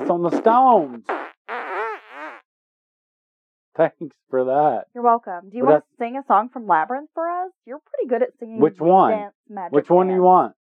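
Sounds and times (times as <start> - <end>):
person imitating farting with their mouth: 0.0 - 2.5
speech: 0.1 - 1.2, 3.8 - 10.6.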